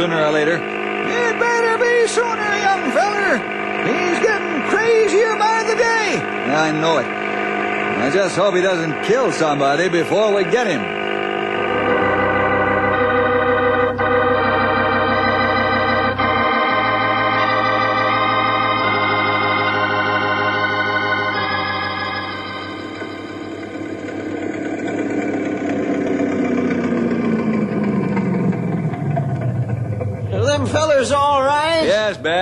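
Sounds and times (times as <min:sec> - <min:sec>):
speech: 0:00.0 - 0:07.3, 0:08.0 - 0:11.0
speedboat engine roaring past: 0:00.0 - 0:32.4.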